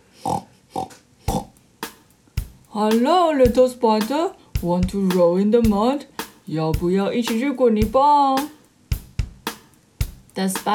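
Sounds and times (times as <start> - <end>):
pig oinking with snorting grunts: 0.2 - 1.6
speech: 2.8 - 8.6, 10.4 - 10.7.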